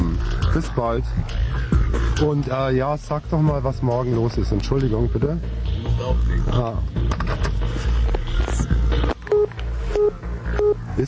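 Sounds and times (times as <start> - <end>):
voices: 0.0 - 9.3
speech: 0.6 - 7.4
telephone touch-tone dialing beeps: 9.3 - 10.8.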